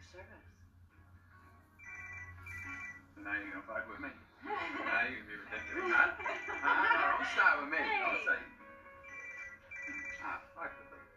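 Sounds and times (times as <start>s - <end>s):
electronic telephone ringing: 1.8s - 3.2s, 5.5s - 7.5s, 9.0s - 10.6s
speech: 3.2s - 8.6s, 10.2s - 10.8s
laughter: 4.5s - 7.6s.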